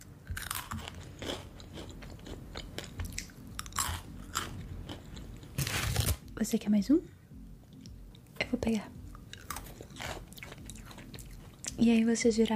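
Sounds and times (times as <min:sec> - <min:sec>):
person biting and chewing a crunchy snack: 0:00.2 - 0:06.2, 0:09.2 - 0:11.8
speech: 0:06.4 - 0:07.2, 0:08.6 - 0:09.0, 0:11.8 - 0:12.5.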